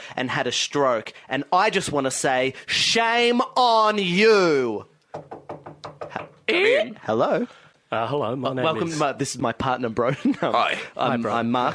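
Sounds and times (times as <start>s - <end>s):
speech: 0.1s - 5.4s, 6.5s - 11.7s
firm knocks on a door: 5.1s - 6.4s.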